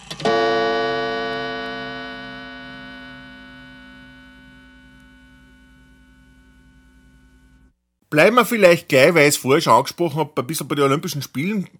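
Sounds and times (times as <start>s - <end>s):
gong struck and ringing: 0.2s - 7.2s
speech: 8.1s - 11.7s.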